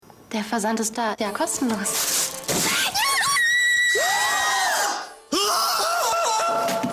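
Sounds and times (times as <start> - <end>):
speech: 0.4 - 2.3
shrill screams of joy in an advertisement: 2.7 - 6.8.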